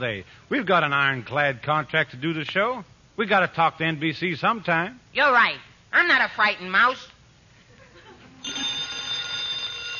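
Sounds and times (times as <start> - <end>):
speech: 0.0 - 7.1
bright electronic telephone ring: 8.4 - 9.9.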